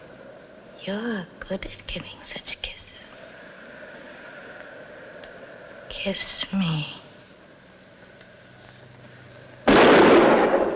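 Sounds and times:
low hum: 0:00.0 - 0:10.7
speech: 0:00.8 - 0:02.8, 0:06.0 - 0:07.0
gunshot fired at a man in a lamplit room: 0:09.7 - 0:10.7.

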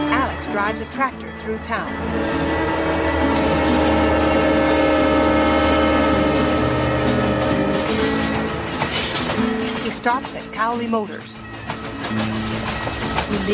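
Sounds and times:
eastbound freight train rolling through the Rocky Mountains: 0:00.0 - 0:13.5
speech: 0:00.5 - 0:03.4, 0:09.9 - 0:13.5
freight train horn tones: 0:01.5 - 0:09.8.

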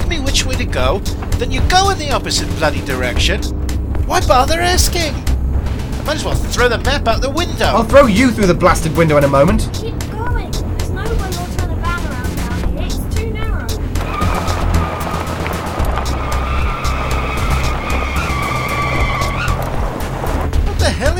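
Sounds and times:
car engine roaring along a dirt track: 0:00.0 - 0:21.1
car tires squealing while skidding on a dirt track: 0:00.0 - 0:21.1
speech: 0:00.1 - 0:05.3, 0:06.1 - 0:10.4.

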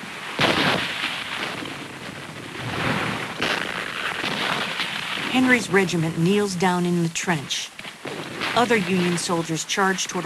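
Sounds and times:
artillery shells exploding on a smoke-filled battlefield: 0:00.0 - 0:06.1, 0:07.8 - 0:10.2
speech: 0:05.4 - 0:07.7, 0:08.5 - 0:10.2.

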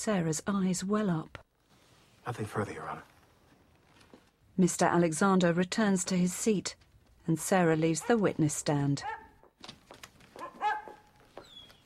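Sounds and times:
speech: 0:00.0 - 0:01.4, 0:02.3 - 0:03.1, 0:04.6 - 0:09.8
dog whining, yelping and barking: 0:10.4 - 0:11.6.

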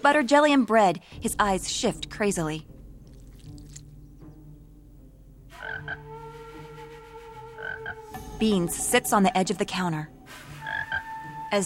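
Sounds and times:
speech: 0:00.0 - 0:02.7, 0:08.4 - 0:10.4
frog croaking in a kitchen: 0:03.0 - 0:04.2, 0:05.5 - 0:06.1, 0:07.6 - 0:08.2, 0:10.6 - 0:11.2.

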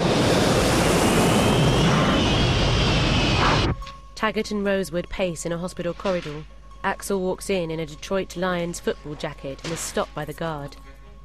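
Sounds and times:
airplane coming in to land: 0:00.0 - 0:03.9
speech: 0:04.2 - 0:10.8.

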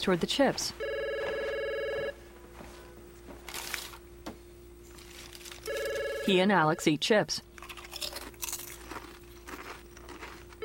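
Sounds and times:
speech: 0:00.0 - 0:00.9, 0:06.3 - 0:07.5
low hum: 0:00.0 - 0:10.6
telephone ringing: 0:00.8 - 0:02.2, 0:05.6 - 0:06.8.

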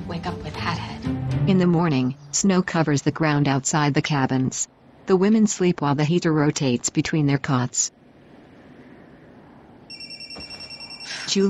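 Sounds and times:
speech: 0:00.1 - 0:00.8, 0:01.5 - 0:08.0, 0:11.3 - 0:11.4
mobile phone ringtone in a cabin on a snowy morning: 0:09.9 - 0:11.4.

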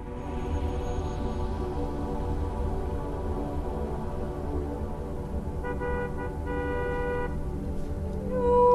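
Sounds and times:
car engine rumbling moving off from a stop sign: 0:00.0 - 0:08.7
brief horn-like tone: 0:05.6 - 0:07.4.

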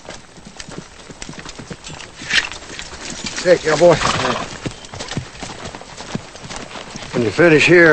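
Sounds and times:
horse hooves clip-clopping at a walk: 0:00.0 - 0:07.9
speech: 0:03.4 - 0:04.5, 0:07.2 - 0:07.9
horse whinny: 0:03.7 - 0:04.8.

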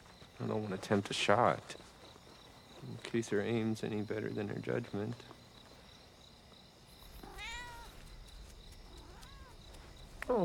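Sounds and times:
speech: 0:00.4 - 0:01.8, 0:02.8 - 0:05.4
fluffy cat meowing: 0:07.1 - 0:08.1, 0:09.0 - 0:09.6.

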